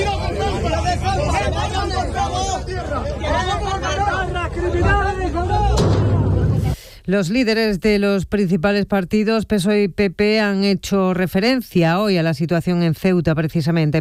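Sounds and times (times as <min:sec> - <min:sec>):
large agitated crowd shouting and clamoring: 0:00.0 - 0:06.7
speech: 0:07.1 - 0:13.9.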